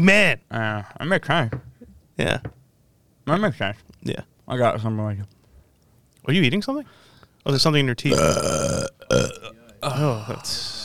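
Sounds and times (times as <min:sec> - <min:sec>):
speech: 0:00.0 - 0:02.6, 0:03.3 - 0:05.4, 0:06.3 - 0:10.8
burp: 0:08.1 - 0:10.0
throaty noises: 0:08.1 - 0:10.8.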